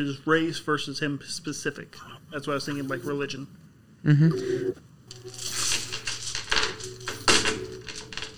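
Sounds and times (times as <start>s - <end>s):
speech: 0.0s - 5.5s
low steady hum: 0.0s - 8.3s
dice rattling and clattering across a hard surface: 5.1s - 8.3s.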